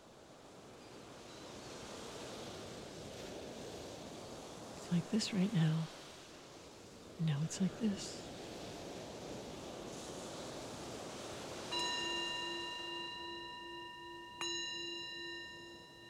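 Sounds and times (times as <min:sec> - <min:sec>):
soft steady wash of noise: 0:00.0 - 0:16.0
speech: 0:04.9 - 0:06.0, 0:07.2 - 0:08.2
meditation bell struck: 0:11.7 - 0:16.0.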